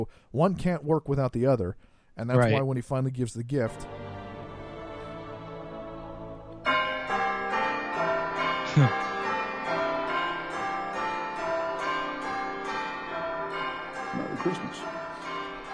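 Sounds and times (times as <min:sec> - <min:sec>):
speech: 0:00.0 - 0:04.0, 0:08.8 - 0:09.1, 0:14.4 - 0:15.1
bell chime ringtone on a tablet: 0:06.7 - 0:15.7.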